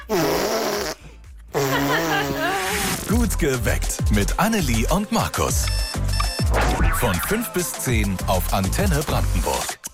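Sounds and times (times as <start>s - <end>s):
young girl blowing raspberries against her arm: 0.1s - 2.4s
speech: 3.3s - 6.0s, 7.0s - 9.8s.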